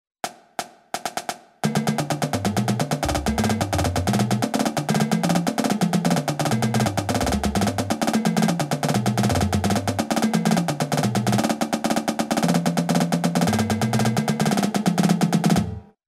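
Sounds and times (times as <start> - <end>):
drumline diddle rudiment in triplets: 0.2 - 15.9.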